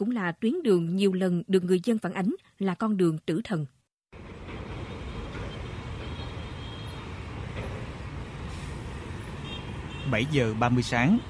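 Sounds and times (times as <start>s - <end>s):
speech: 0.0s - 4.3s, 10.1s - 11.2s
heavy road traffic of container trucks and lorries on a congested road near a port: 4.2s - 11.2s.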